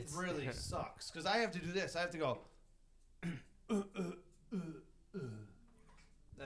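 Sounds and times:
speech: 0.0s - 2.5s, 3.2s - 5.6s
person making forced throat-clearing coughs: 3.2s - 5.6s.

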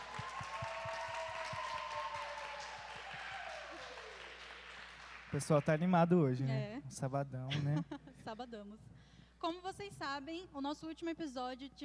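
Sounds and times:
audience applauding: 0.0s - 6.2s
speech: 5.3s - 11.8s
laughter: 7.5s - 8.3s.

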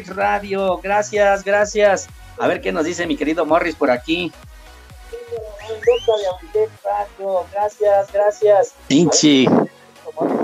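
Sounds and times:
speech: 0.0s - 4.5s, 5.8s - 9.6s
person whistling a wolf whistle: 5.1s - 6.5s.

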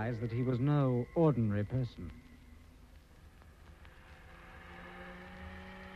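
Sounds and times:
speech: 0.0s - 2.2s
car engine roaring as it accelerates hard and drives fast: 3.4s - 5.9s.

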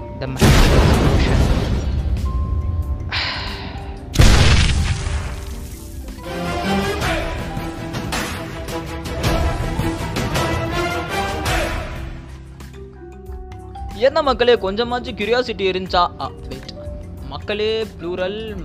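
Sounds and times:
dense tonal background: 0.0s - 18.4s
speech: 0.2s - 1.6s, 14.0s - 16.6s, 17.3s - 18.6s
grenade explosion: 0.4s - 2.2s, 4.2s - 5.9s.

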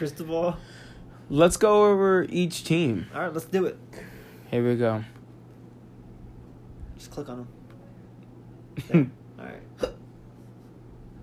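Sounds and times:
speech: 0.0s - 5.2s, 7.1s - 7.6s, 8.8s - 9.7s
low steady hum: 0.0s - 11.2s
hiccups: 9.8s - 10.1s.

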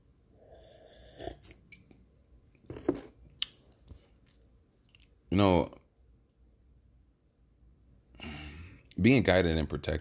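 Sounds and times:
person sipping a drink: 0.4s - 1.9s
speech: 5.4s - 5.8s, 9.0s - 9.9s.

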